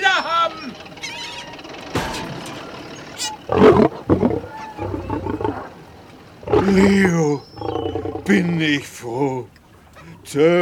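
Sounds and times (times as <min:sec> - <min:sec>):
vehicle noise: 0:00.0 - 0:08.8
lion in a jeep roaring: 0:03.2 - 0:05.8, 0:06.4 - 0:08.7
lion growling: 0:03.2 - 0:08.8
speech: 0:06.7 - 0:07.5, 0:08.3 - 0:09.6, 0:10.3 - 0:10.6.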